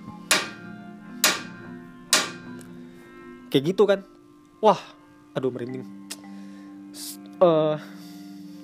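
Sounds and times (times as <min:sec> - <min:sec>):
sharp knocks: 0:00.3 - 0:00.6, 0:01.2 - 0:02.5
speech: 0:03.5 - 0:06.0, 0:06.9 - 0:08.0.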